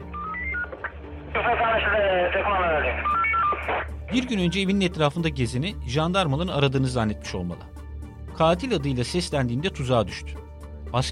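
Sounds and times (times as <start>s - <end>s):
walkie-talkie electronic beeping tones: 0.2s - 0.8s
speech: 1.4s - 7.7s, 8.4s - 11.1s.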